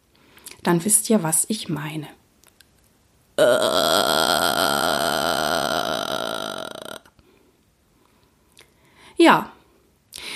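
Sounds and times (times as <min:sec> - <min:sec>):
speech: 0:00.6 - 0:02.2, 0:03.4 - 0:03.9
breathy vocal burst: 0:03.4 - 0:07.1.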